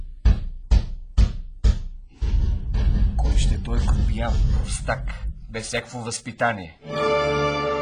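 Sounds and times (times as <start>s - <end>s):
heavy booming knocks on a door: 0.0s - 5.5s
speech: 3.7s - 7.7s.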